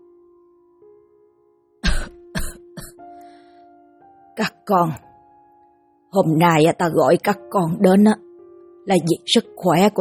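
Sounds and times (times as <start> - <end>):
old man coughing fit: 1.8 - 3.0
speech: 4.4 - 5.1, 6.1 - 8.2, 8.8 - 10.0.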